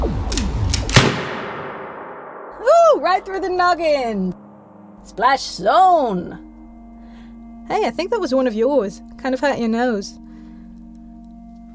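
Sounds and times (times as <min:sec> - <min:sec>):
rifle shot: 0:00.3 - 0:02.6
speech: 0:03.0 - 0:04.4, 0:05.0 - 0:06.5, 0:07.7 - 0:10.2.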